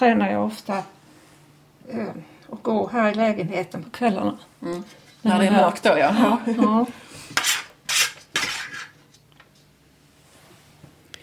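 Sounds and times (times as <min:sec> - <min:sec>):
speech: 0:00.0 - 0:01.0, 0:01.8 - 0:07.5
spoon scraping and clinking against a bowl dabbing onion and bacon filling: 0:07.3 - 0:09.0.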